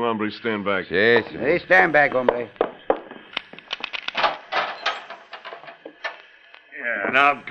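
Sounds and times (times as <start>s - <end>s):
speech: 0.0s - 2.6s, 7.1s - 7.4s
jail cell door clicking and rattling: 4.1s - 6.2s.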